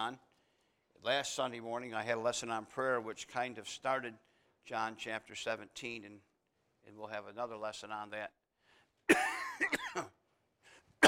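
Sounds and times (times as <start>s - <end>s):
speech: 0.0s - 0.3s, 1.0s - 8.4s, 9.1s - 10.2s
man coughing during an evening Bible study lesson: 9.1s - 10.2s
rasping throat-clearing: 9.1s - 10.2s.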